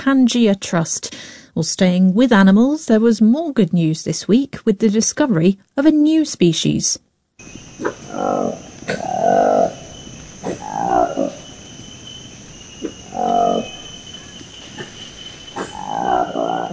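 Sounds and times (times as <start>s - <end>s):
speech: 0.0s - 9.8s
high insect drone: 7.4s - 16.7s
colobus monkey roaring: 7.8s - 16.7s.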